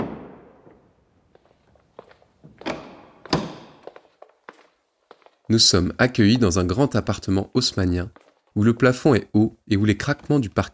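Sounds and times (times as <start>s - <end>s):
knocks, clunks and bumps of a door: 2.4s - 3.9s
heavy door of an old apartment building thudding open: 2.6s - 3.8s
speech: 5.5s - 10.7s.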